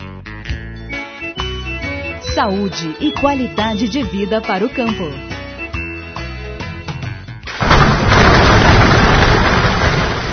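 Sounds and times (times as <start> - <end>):
music: 0.0 - 7.6
speech: 2.4 - 5.3
loud, sustained roll of thunder: 7.6 - 10.3.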